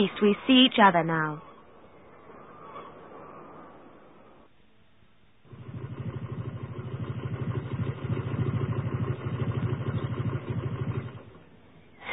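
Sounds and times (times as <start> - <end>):
speech: 0.0 - 1.5
motorcycle engine idling: 5.4 - 12.0.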